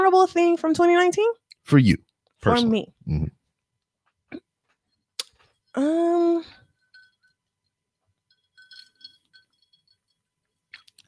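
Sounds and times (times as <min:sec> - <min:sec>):
speech: 0:00.2 - 0:03.4, 0:05.8 - 0:06.6
ice cubes clinking against a glass: 0:08.3 - 0:11.0.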